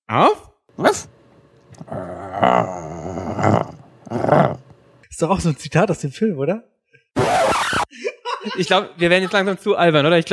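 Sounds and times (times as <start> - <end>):
speech: 0.1 - 1.1, 2.4 - 2.8, 5.2 - 6.7, 8.5 - 10.3
person growling like a dog: 1.7 - 4.8
laughter: 7.9 - 9.6.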